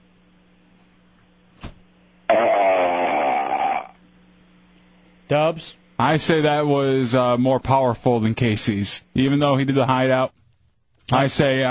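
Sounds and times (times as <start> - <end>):
low hum: 0.0 - 11.6
long loud burp over a telephone line: 2.3 - 4.0
speech: 5.3 - 10.4, 11.1 - 11.6.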